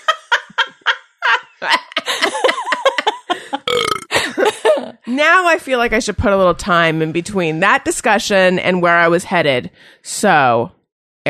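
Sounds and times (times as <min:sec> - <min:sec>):
laughter: 0:00.0 - 0:05.1
speech: 0:01.6 - 0:01.9, 0:05.2 - 0:11.2
long gurgling burp: 0:03.7 - 0:04.1.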